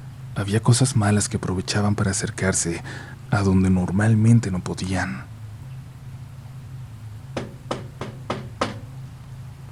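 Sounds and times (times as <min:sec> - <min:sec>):
low hum: 0:00.0 - 0:09.6
speech: 0:00.4 - 0:05.3
firm knocking on a door: 0:07.4 - 0:08.9.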